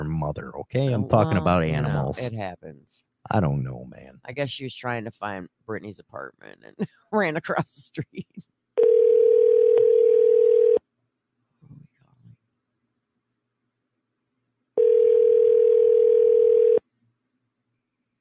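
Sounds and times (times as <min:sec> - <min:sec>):
speech: 0:00.2 - 0:08.5
telephone ringing on a radio show call-in line: 0:08.8 - 0:10.8, 0:14.8 - 0:16.8.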